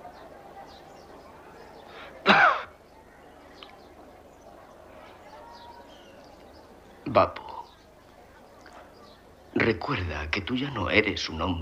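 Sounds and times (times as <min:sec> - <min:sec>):
old man coughing roughly: 0:02.3 - 0:02.7
speech: 0:07.1 - 0:07.4, 0:09.8 - 0:11.6.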